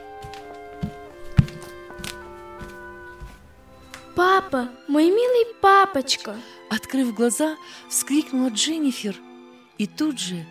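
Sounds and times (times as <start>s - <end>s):
quick footsteps of an older man entering a hall: 0.0s - 4.2s
soft sustained musical drone: 0.0s - 10.4s
speech: 4.2s - 10.4s.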